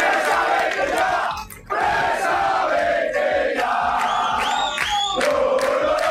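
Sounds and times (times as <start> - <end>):
football supporters chanting and shouting in protest at their stadium in Vallecas: 0.0 - 6.0.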